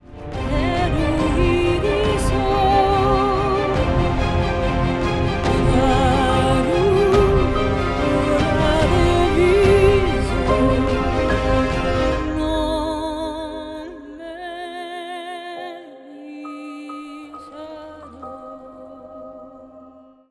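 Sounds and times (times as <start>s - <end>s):
epic commercial music: 0.0s - 14.0s.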